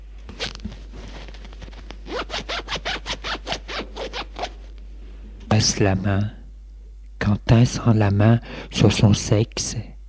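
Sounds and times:
trouser fly zipper pulled down: 0:00.3 - 0:04.6
handling and rustling of clothing: 0:00.3 - 0:04.7
speech: 0:05.6 - 0:06.4, 0:07.3 - 0:09.9.

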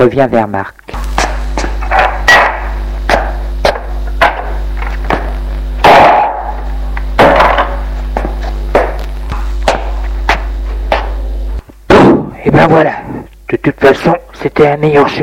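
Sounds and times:
speech: 0:00.0 - 0:00.8, 0:12.5 - 0:15.2
steady low hum: 0:00.7 - 0:15.2
sharp hammer blows to a skull: 0:00.9 - 0:11.3.

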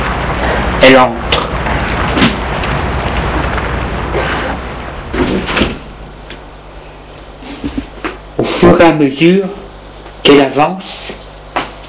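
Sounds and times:
low steady hum: 0:00.0 - 0:11.8
speech: 0:00.8 - 0:01.4, 0:08.8 - 0:09.6, 0:10.2 - 0:11.2
glass door sliding open with a whooshing rush: 0:05.0 - 0:06.0.

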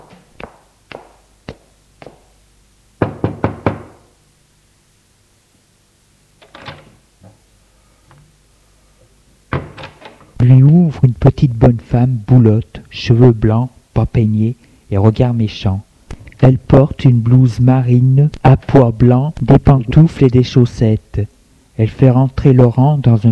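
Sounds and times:
knocking on an apartment door: 0:03.0 - 0:04.1
speech: 0:10.4 - 0:23.2.

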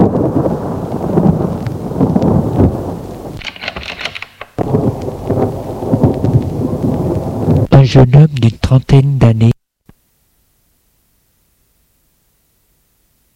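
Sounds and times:
loud rolling thunder: 0:00.0 - 0:07.7
heavy rain: 0:00.0 - 0:08.3
speech: 0:08.0 - 0:09.6.

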